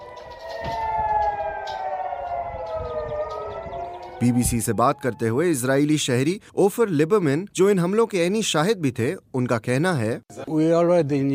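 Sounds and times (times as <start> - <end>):
rocket attack warning sirens wailing: 0.0 - 6.2
speech: 4.2 - 11.3.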